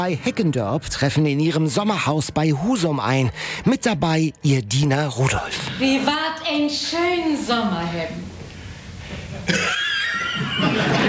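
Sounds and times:
speech: 0.0s - 8.3s, 9.4s - 9.8s
laughter: 9.1s - 11.0s
man coughing harshly in a stage play: 9.4s - 10.0s.

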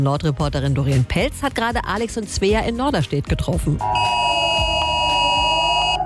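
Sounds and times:
speech: 0.0s - 4.3s
mobile phone emergency alert tone in Norderstedt Germany: 3.8s - 6.0s.

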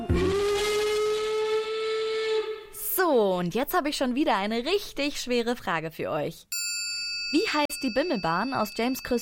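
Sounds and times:
steam train whistle: 0.1s - 2.8s
speech: 3.4s - 6.6s, 7.3s - 9.2s.

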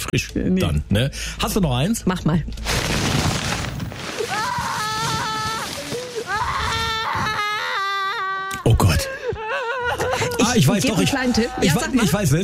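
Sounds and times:
speech: 0.1s - 3.6s, 10.6s - 12.4s
person imitating a toddler whining and crying: 4.3s - 8.7s
laughter: 7.0s - 12.4s.

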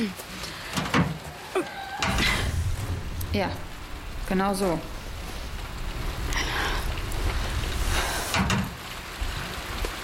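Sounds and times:
speech: 0.0s - 0.2s, 3.3s - 3.7s, 4.3s - 4.9s
door being opened with clunks and scraping: 2.0s - 8.8s
steady hum: 2.0s - 9.9s.

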